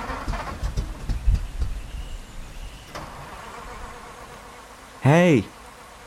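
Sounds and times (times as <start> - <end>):
car engine cranking and struggling to start: 0.0 - 3.6
speech: 5.0 - 5.6.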